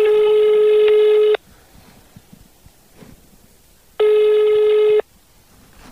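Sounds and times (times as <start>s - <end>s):
phone ringback tone of an unanswered call: 0.0s - 1.4s, 4.0s - 5.1s.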